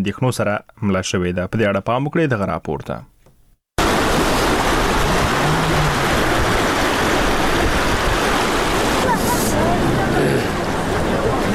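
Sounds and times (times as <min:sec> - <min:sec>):
speech: 0:00.0 - 0:03.1
rushing floodwater after rains near homes in Uruzgan province: 0:03.8 - 0:11.5.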